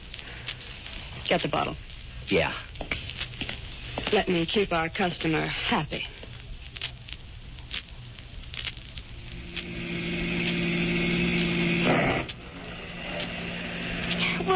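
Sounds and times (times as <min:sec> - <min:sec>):
steady rain pattering with scattered drips: 0:00.0 - 0:14.5
speech: 0:01.3 - 0:03.0, 0:04.1 - 0:06.2
car engine humming: 0:09.1 - 0:14.5.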